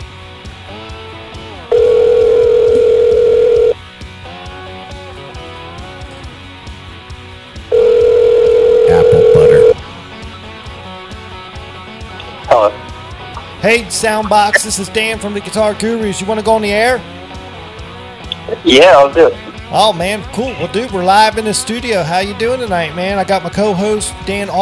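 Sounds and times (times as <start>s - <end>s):
ringback tones on an outgoing phone line: 1.7s - 3.8s, 7.7s - 9.8s
speech: 13.6s - 17.2s, 18.6s - 24.5s.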